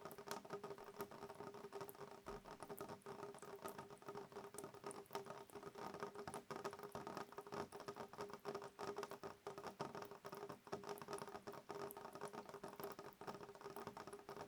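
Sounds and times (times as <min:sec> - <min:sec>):
raindrops pattering against a window: 0:00.0 - 0:14.4.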